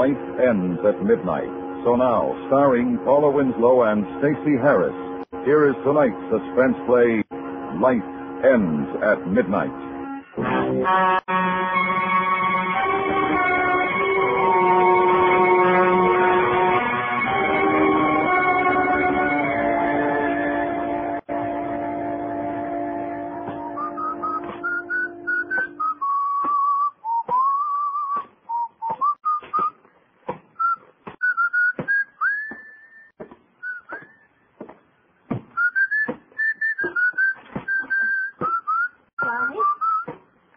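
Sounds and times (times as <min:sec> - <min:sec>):
speech: 0:00.0 - 0:07.2, 0:07.8 - 0:12.1
musical chord: 0:00.0 - 0:25.8
person whistling a lively wandering tune: 0:23.6 - 0:29.8, 0:30.6 - 0:34.4, 0:35.6 - 0:40.2.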